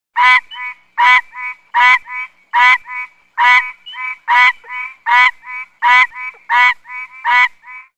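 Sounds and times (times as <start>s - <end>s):
tree frogs honking: 0.2s - 7.9s.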